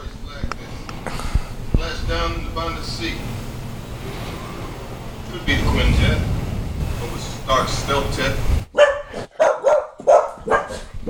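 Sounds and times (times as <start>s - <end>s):
speech: 2.1s - 3.4s, 5.4s - 6.3s, 7.0s - 8.6s
dogs barking: 8.7s - 11.0s.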